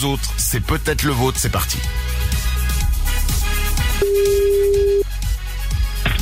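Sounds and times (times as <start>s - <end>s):
speech: 0.0s - 2.1s
dense busy backdrop of music and noise: 0.0s - 6.2s
ringback tone of an outgoing phone call to a listener: 4.0s - 5.0s.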